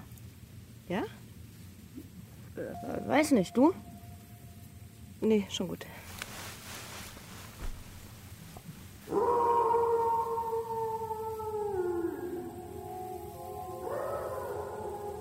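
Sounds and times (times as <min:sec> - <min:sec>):
faint rumble outdoors in cold weather: 0:00.0 - 0:15.1
speech: 0:00.9 - 0:01.2, 0:02.6 - 0:03.9, 0:05.2 - 0:06.0
dog howling outdoors in cold weather: 0:09.1 - 0:15.1.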